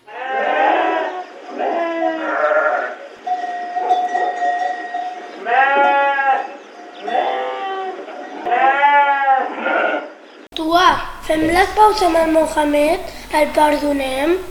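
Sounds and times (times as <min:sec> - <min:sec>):
several sheep bleating: 0:00.0 - 0:03.0, 0:03.8 - 0:10.1
faint steady hum: 0:10.6 - 0:14.4
speech: 0:11.3 - 0:14.4.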